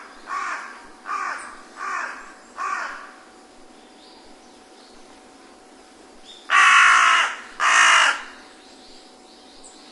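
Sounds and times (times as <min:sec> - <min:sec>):
carrion crow cawing: 0:00.3 - 0:03.1, 0:06.5 - 0:08.4.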